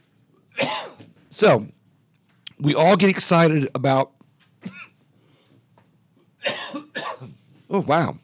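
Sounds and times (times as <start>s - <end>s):
person with allergies coughing: 0.6s - 1.1s, 4.6s - 5.0s, 6.4s - 7.4s
speech: 1.3s - 1.8s, 2.6s - 4.8s, 7.7s - 8.2s.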